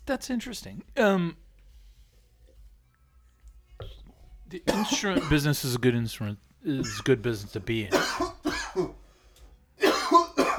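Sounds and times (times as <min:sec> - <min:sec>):
speech: 0:00.1 - 0:01.4, 0:04.5 - 0:09.0
person coughing: 0:04.6 - 0:05.5, 0:06.7 - 0:07.2, 0:07.9 - 0:09.0, 0:09.8 - 0:10.5.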